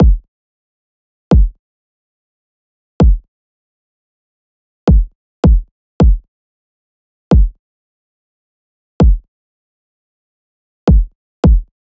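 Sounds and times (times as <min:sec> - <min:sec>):
pop kick drum loop: 0:00.0 - 0:00.2, 0:01.3 - 0:01.6, 0:03.0 - 0:03.2, 0:04.9 - 0:06.2, 0:07.3 - 0:07.6, 0:10.9 - 0:11.7.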